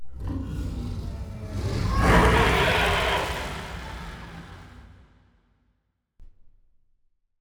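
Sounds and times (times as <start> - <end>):
aquatic dragon death cry: 0.1 - 5.0.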